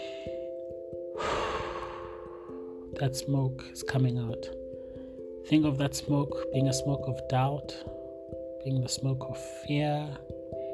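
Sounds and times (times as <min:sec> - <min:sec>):
slow breathing in and out: 0:00.0 - 0:02.9
speech: 0:03.0 - 0:04.6, 0:05.5 - 0:08.0, 0:08.6 - 0:10.4.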